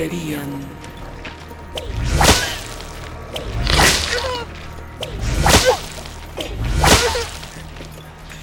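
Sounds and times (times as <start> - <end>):
whip lashes cracking: 1.8 - 4.4, 5.0 - 7.6.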